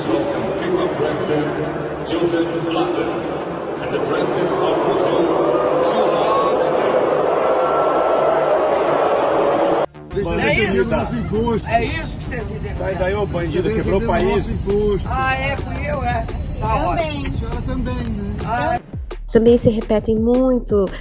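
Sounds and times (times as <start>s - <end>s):
stadium crowd booing and chanting insults at Brazilian national team match: 0.0s - 9.9s
speech: 10.9s - 21.0s.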